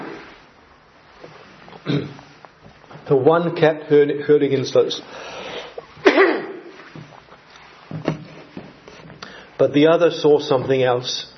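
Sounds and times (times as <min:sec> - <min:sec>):
person clearing throat: 0:01.8 - 0:02.2, 0:06.0 - 0:06.7
speech: 0:01.8 - 0:02.2, 0:03.1 - 0:05.5, 0:09.6 - 0:11.3.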